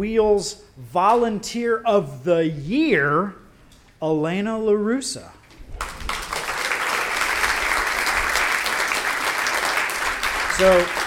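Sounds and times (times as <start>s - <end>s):
speech: 0.0s - 3.4s, 4.0s - 5.4s, 10.6s - 11.0s
church audience applauding a volunteer: 5.8s - 11.0s.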